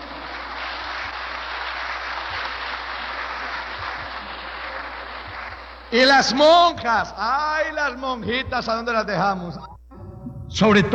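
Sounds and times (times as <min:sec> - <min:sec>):
crowd applauding: 0:00.0 - 0:07.7
speech: 0:05.9 - 0:09.7, 0:10.5 - 0:10.9.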